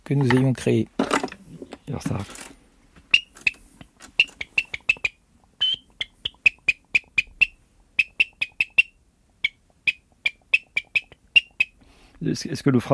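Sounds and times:
speech: 0:00.1 - 0:01.0, 0:01.9 - 0:02.5, 0:12.2 - 0:12.9
beech and ash wood bird call imitating a tern: 0:04.2 - 0:11.8.

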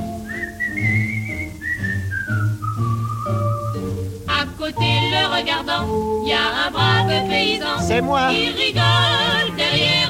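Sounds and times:
person whistling a slow smooth tune: 0:00.0 - 0:04.0
low instrumental accompaniment: 0:00.0 - 0:10.0
speech: 0:05.4 - 0:09.5.

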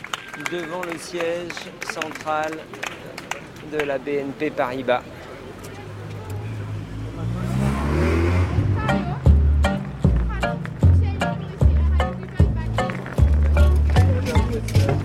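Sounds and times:
murmur of voices: 0:00.0 - 0:15.0
speech: 0:00.4 - 0:05.2
small hand truck loaded with printed reports rolling: 0:09.9 - 0:15.0.

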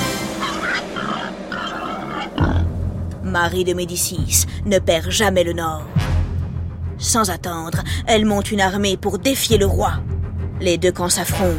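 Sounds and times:
wild boars grunting along a road: 0:00.0 - 0:02.8
speech: 0:03.4 - 0:06.0, 0:07.0 - 0:11.5.

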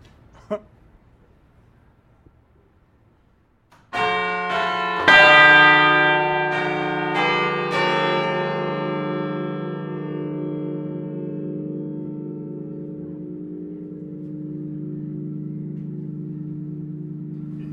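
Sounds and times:
six large church bells ringing together: 0:03.8 - 0:17.7.

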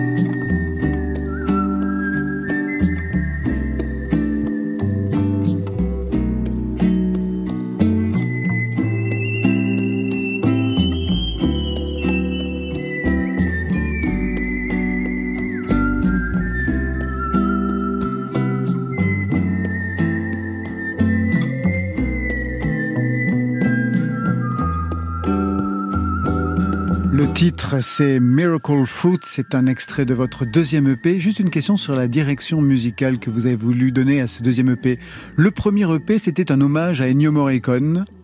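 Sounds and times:
full backing track with steady drums and bass: 0:00.0 - 0:27.6
clear whistled melody in long sustained notes: 0:00.0 - 0:38.2
speech: 0:27.4 - 0:38.2.

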